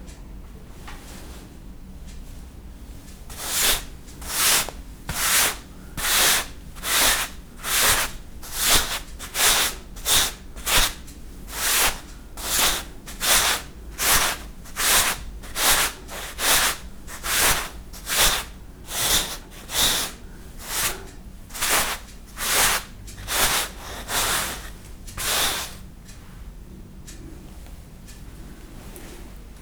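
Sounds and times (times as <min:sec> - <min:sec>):
clothes brush brushing: 0:03.3 - 0:25.8.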